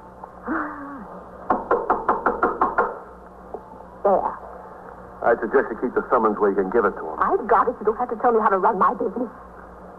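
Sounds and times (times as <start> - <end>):
firm knocks on a wooden door: 1.5 - 3.0
speech: 4.1 - 4.4, 5.2 - 9.5.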